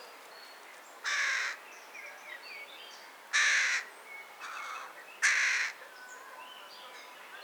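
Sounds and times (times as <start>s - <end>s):
carrion crow Corvus corone uttering harsh grating caws: 1.1s - 1.6s, 3.4s - 5.8s.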